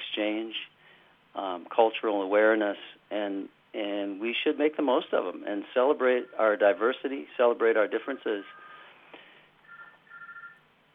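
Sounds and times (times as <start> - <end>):
speech: 1.4 - 8.6
telephone ringing with a soft electronic trill: 6.0 - 7.1, 7.8 - 9.0, 9.6 - 10.7.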